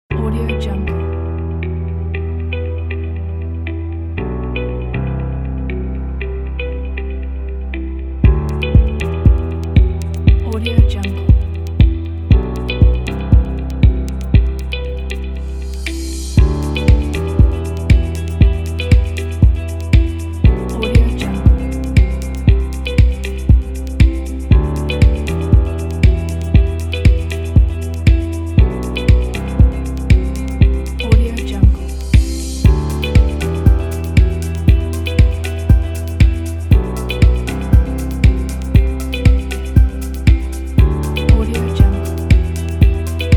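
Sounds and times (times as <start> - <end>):
melodic ambient music: 0.1 - 43.3.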